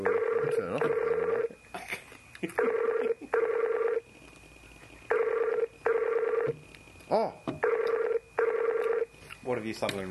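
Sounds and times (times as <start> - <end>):
speech: 0.0 - 1.2, 9.7 - 10.0
phone ringtone ringing in a double-ring pattern: 0.0 - 1.6, 2.6 - 4.0, 5.1 - 6.5, 7.6 - 9.1.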